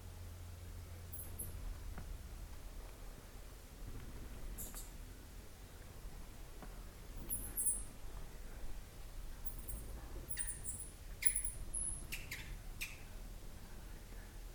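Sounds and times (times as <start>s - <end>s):
steady low background hiss: 0.0s - 14.5s
bats squeaking in Burma: 1.1s - 1.6s, 7.2s - 7.9s, 9.4s - 13.0s.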